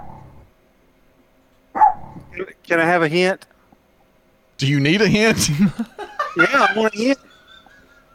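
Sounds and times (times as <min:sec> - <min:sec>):
dog barking: 0:01.8 - 0:02.2
speech: 0:02.4 - 0:03.5, 0:04.6 - 0:07.3
laughter: 0:04.9 - 0:08.1.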